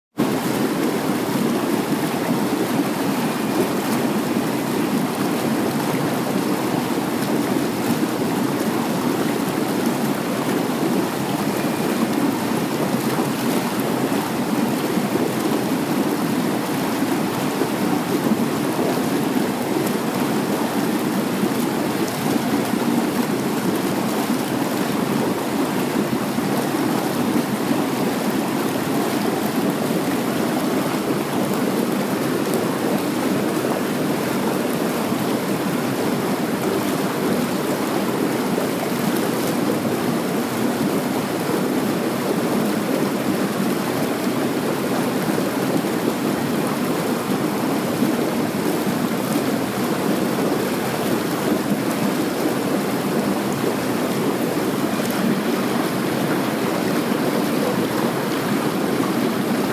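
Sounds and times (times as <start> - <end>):
hot tub: 0.1 - 59.7.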